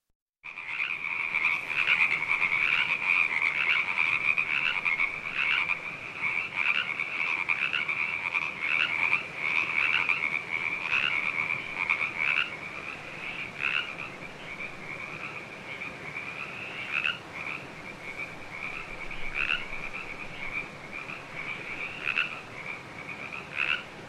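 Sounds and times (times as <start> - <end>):
frog chorus: 0.5 - 24.0.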